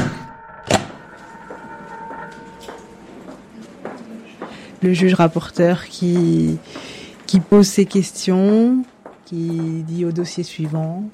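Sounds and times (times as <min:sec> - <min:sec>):
door slamming shut: 0:00.0 - 0:01.0
speech: 0:04.8 - 0:11.1.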